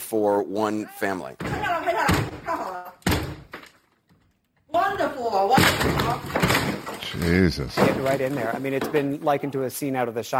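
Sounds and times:
speech: 0:00.1 - 0:02.2, 0:04.9 - 0:06.4, 0:07.0 - 0:10.3
door being kicked in: 0:01.4 - 0:03.7, 0:05.5 - 0:09.0.

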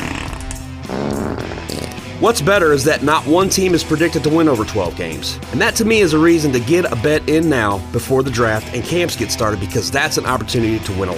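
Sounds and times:
wet fart sound effect: 0:00.0 - 0:02.2
speech: 0:02.2 - 0:11.1.

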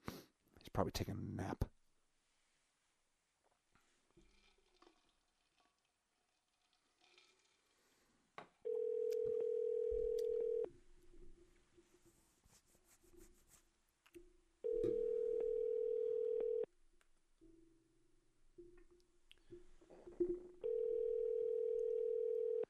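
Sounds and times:
speech: 0:00.8 - 0:01.7
ringback tones of an outgoing telephone call: 0:08.7 - 0:10.7, 0:14.6 - 0:16.7, 0:20.6 - 0:22.6.

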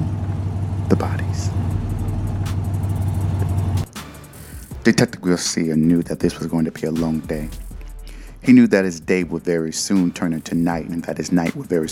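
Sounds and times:
car engine running with a low hum and faint whine: 0:00.0 - 0:08.4
speech: 0:00.9 - 0:02.0, 0:04.8 - 0:07.6, 0:08.4 - 0:11.9.

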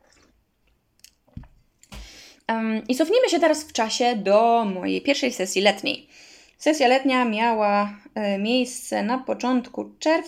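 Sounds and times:
person sipping tea from a cup: 0:00.0 - 0:01.2
soft wet mouth clicks: 0:00.9 - 0:02.0
speech: 0:02.5 - 0:10.2.

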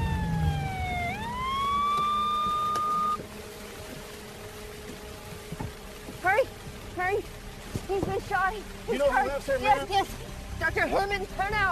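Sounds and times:
police cruiser siren wailing on the way to a residence: 0:00.0 - 0:03.2
low traffic rumble: 0:00.0 - 0:11.7
speech: 0:08.6 - 0:10.2, 0:10.8 - 0:11.7.

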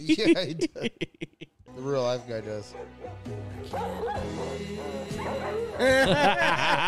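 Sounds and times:
speech: 0:00.0 - 0:01.3, 0:02.0 - 0:06.8
laughter: 0:00.0 - 0:01.5, 0:05.7 - 0:06.8
dog barking and yipping agitatedly: 0:02.7 - 0:05.8.

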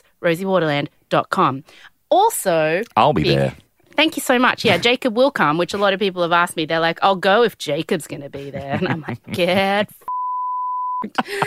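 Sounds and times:
speech: 0:00.2 - 0:10.1, 0:11.0 - 0:11.4
laughter: 0:08.3 - 0:10.0, 0:11.0 - 0:11.4
flat steady censor bleep: 0:10.1 - 0:11.1.

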